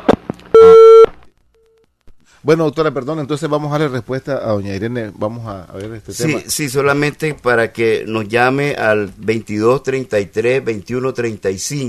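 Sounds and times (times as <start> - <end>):
telephone busy tone after a dropped call: 0.6 - 1.1
speech: 2.4 - 11.8.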